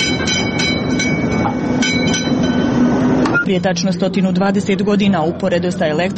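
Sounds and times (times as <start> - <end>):
tram rail clicks and rattles: 0.0 - 3.8
replica of the first electric tram rumbling through the streets of Sarajevo: 0.0 - 6.1
speech: 3.5 - 6.1.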